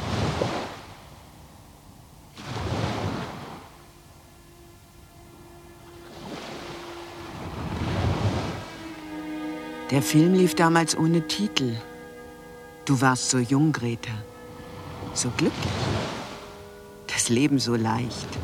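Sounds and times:
sea waves washing onto a beach: 0:00.0 - 0:01.3, 0:02.3 - 0:03.8, 0:05.8 - 0:09.2, 0:14.8 - 0:18.4
speech: 0:09.9 - 0:11.9, 0:12.8 - 0:14.3, 0:15.1 - 0:15.9, 0:17.3 - 0:18.4.

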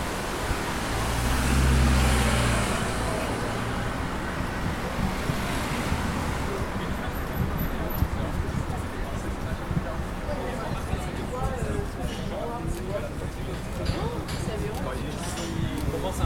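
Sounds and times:
vehicle passing: 0:00.0 - 0:08.2
loud road traffic roar beside a busy street: 0:00.0 - 0:16.2.

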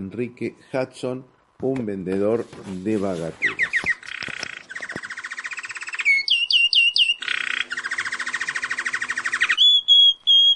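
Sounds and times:
speech: 0:00.1 - 0:03.7
goldfinch singing: 0:03.4 - 0:10.5.

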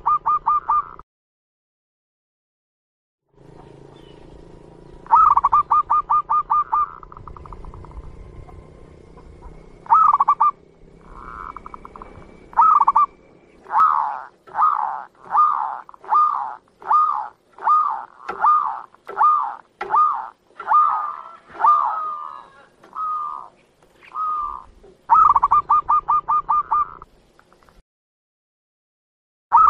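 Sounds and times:
zebra dove singing stuttering notes and coos: 0:00.0 - 0:01.0, 0:05.1 - 0:08.0, 0:09.4 - 0:27.1
faint low hum: 0:03.4 - 0:27.8.

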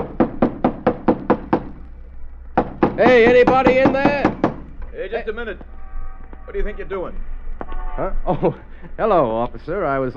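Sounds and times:
loud knocks on the stage door of an old boarded-up theater: 0:00.0 - 0:01.7, 0:02.6 - 0:04.7
speech: 0:03.0 - 0:04.3, 0:05.0 - 0:05.7, 0:06.5 - 0:07.3, 0:08.0 - 0:10.1
laughter: 0:08.3 - 0:09.0.

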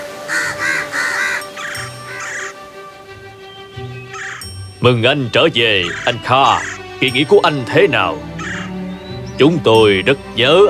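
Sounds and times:
crows cawing while gathering at a nest: 0:00.2 - 0:02.7, 0:04.1 - 0:04.5, 0:05.8 - 0:07.0, 0:08.2 - 0:08.9
speech: 0:04.8 - 0:08.3, 0:09.4 - 0:10.6.

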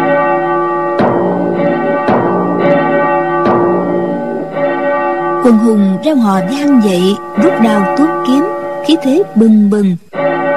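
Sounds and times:
temple bells ringing at a Shaolin monastery: 0:00.0 - 0:10.5
speech: 0:05.4 - 0:10.1.

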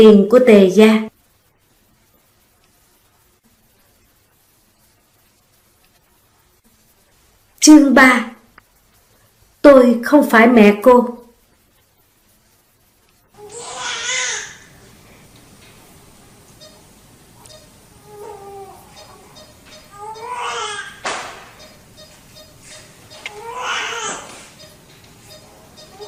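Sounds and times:
speech: 0:00.0 - 0:01.1, 0:07.6 - 0:08.4, 0:09.6 - 0:11.2
newborn baby crying in thin plaintive wails: 0:13.4 - 0:14.8, 0:18.0 - 0:21.0, 0:23.2 - 0:24.4, 0:25.9 - 0:26.0.

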